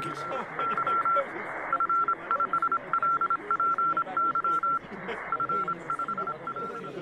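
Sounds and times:
dense murmuring background: 0.0s - 6.9s
high-pitched Morse code telegraph tone: 0.0s - 6.9s
laughter: 0.0s - 6.9s.

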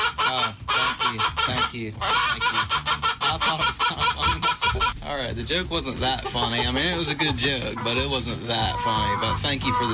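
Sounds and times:
chicken clucking: 0.0s - 5.0s, 6.0s - 9.9s
speech: 1.1s - 9.9s.

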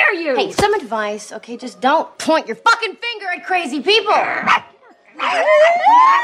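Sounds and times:
speech: 0.3s - 6.2s
people imitating dogs barking: 4.1s - 6.2s.

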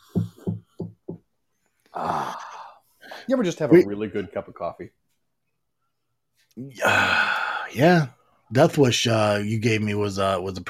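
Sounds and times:
knocking on a door: 0.0s - 1.3s
speech: 2.0s - 2.4s, 3.2s - 5.0s, 6.6s - 10.6s.

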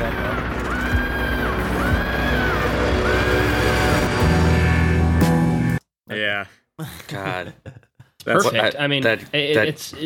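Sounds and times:
drawn-out wavering scream in a song recording: 0.0s - 5.2s
speech: 6.8s - 10.0s.

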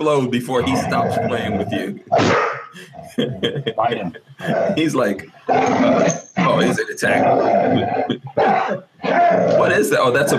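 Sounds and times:
speech: 0.0s - 10.3s
dog barking: 2.2s - 2.7s
laughter: 2.8s - 5.2s, 6.5s - 9.0s.

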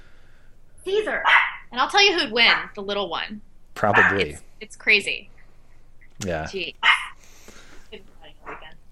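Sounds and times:
speech: 0.8s - 5.4s, 6.2s - 7.0s
dog barking: 1.2s - 1.7s, 3.8s - 4.4s, 6.8s - 7.2s, 8.4s - 8.8s.

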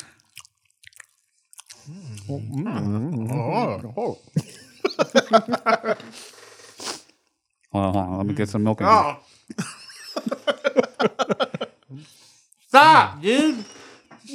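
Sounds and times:
crunchy chewing and biting during a mukbang eating session: 0.0s - 3.5s
speech: 1.9s - 6.4s, 7.7s - 10.4s, 11.0s - 13.7s
laughter: 4.4s - 6.2s, 9.5s - 11.8s.

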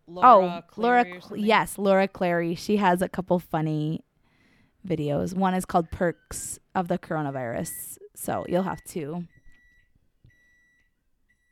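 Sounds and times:
speech: 0.1s - 4.1s, 4.8s - 9.4s
microwave oven beeping: 5.3s - 11.4s.

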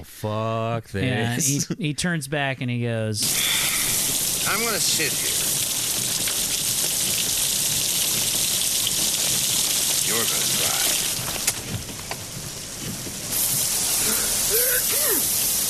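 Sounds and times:
speech: 0.0s - 5.5s
low rumbles of thunder: 3.2s - 13.9s
heavy rain pouring: 3.2s - 15.6s.

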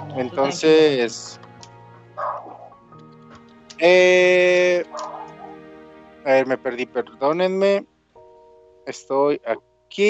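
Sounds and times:
speech: 0.2s - 1.4s, 3.8s - 5.1s, 6.3s - 7.9s, 8.9s - 10.0s
small dog barking and yelping: 2.2s - 2.7s, 4.9s - 5.6s.

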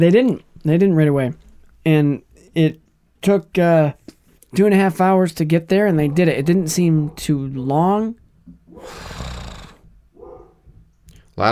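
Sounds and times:
speech: 0.0s - 8.2s, 8.8s - 9.2s
dog barking: 6.0s - 7.3s, 10.2s - 10.7s.

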